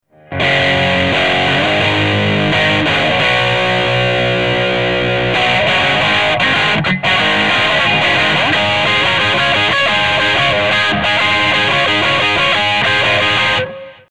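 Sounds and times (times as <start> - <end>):
guitar with Brit distortion: 0.0 - 14.0.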